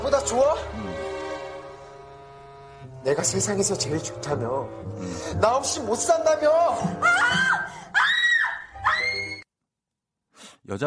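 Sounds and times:
speech: 0.0 - 1.0, 3.0 - 7.8, 10.7 - 10.8
woman screaming in a drama clip: 7.0 - 9.4.

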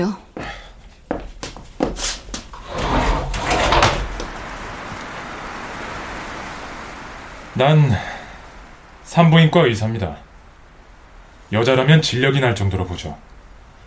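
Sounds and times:
speech: 0.0 - 0.2, 7.6 - 8.1, 9.1 - 10.2, 11.5 - 13.3
steady hiss of rain or outdoor ambience: 0.1 - 13.8
window scraping as it slides open: 1.9 - 5.2.

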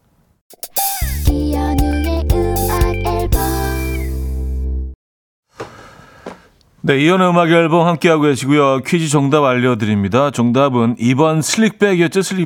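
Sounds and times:
pop song with a heavy bass line and steady beat: 0.6 - 4.8
speech: 6.9 - 12.4.

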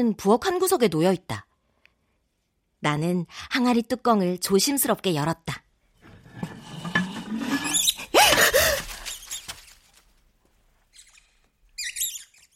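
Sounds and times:
speech: 0.0 - 1.5, 2.8 - 5.6
soft rustling patter of mouse scurrying: 6.1 - 10.9
mouse squeaking: 7.5 - 8.1, 10.9 - 12.5.

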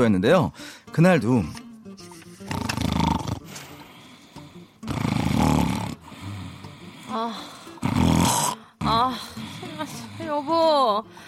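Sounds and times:
speech: 0.0 - 1.6
loud rasping snores: 2.4 - 9.0.

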